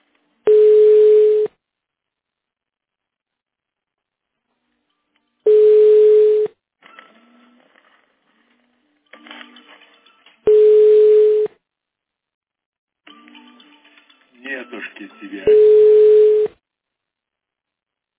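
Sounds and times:
telephone ringback tone while calling a phone: 0.5s - 1.5s, 5.5s - 6.5s, 10.5s - 11.5s, 15.5s - 16.6s.

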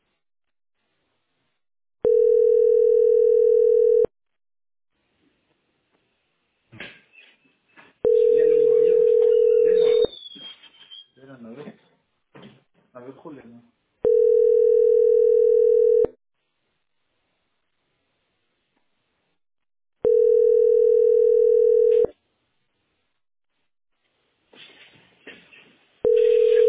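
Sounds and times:
telephone call ringing tone while waiting in a queue: 2.0s - 4.1s, 8.0s - 10.1s, 14.0s - 16.2s, 20.0s - 22.1s, 26.0s - 26.6s.

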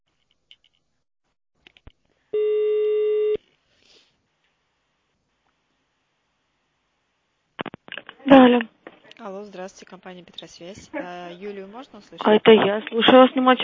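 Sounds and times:
telephone keypad tone on an automated phone line: 2.4s - 3.4s
speech: 8.3s - 13.6s.

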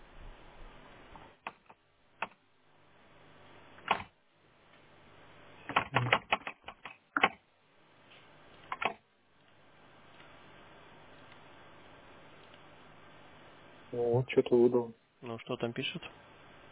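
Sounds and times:
computer keyboard typing clicks: 5.7s - 7.4s, 8.7s - 10.3s
speech: 14.2s - 16.2s.

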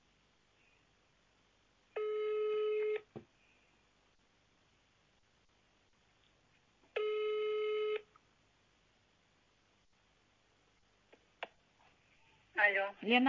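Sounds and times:
electronic phone ringback tones after a busy line: 2.0s - 3.1s, 7.0s - 8.0s
speech: 12.6s - 13.2s.

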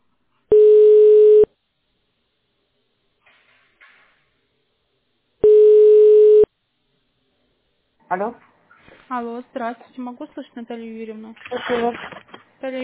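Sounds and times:
steady mid-pitched telephone line tone while waiting for a connection: 0.5s - 1.5s, 5.4s - 6.5s
speech: 8.1s - 8.5s, 9.1s - 12.8s.

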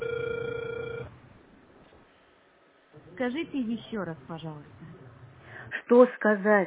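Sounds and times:
telephone ringback tone while a call connects: 0.0s - 1.2s
speech: 3.2s - 4.9s, 5.9s - 6.6s.

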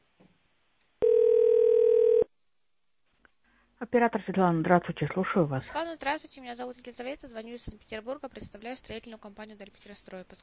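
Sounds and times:
steady telephone line tone while a call is being transferred: 1.0s - 2.3s
speech: 3.9s - 10.4s.

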